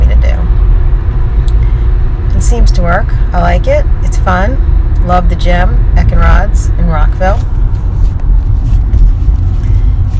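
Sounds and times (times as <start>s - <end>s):
car driving along with low road rumble: 0.0s - 10.1s
speech: 2.5s - 7.5s.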